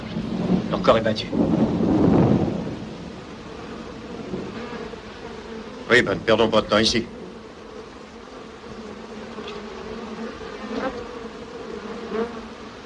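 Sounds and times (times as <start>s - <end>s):
thunder rumbling in a thunderstorm: 0.0s - 7.4s
rain and storm noise: 0.0s - 9.9s, 12.5s - 12.8s
bees buzzing: 0.0s - 12.8s
speech: 0.8s - 2.1s, 5.9s - 7.2s.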